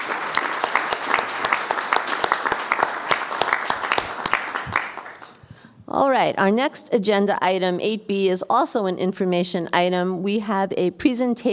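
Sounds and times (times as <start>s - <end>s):
room full of people applauding: 0.0s - 5.5s
speech: 6.0s - 11.5s.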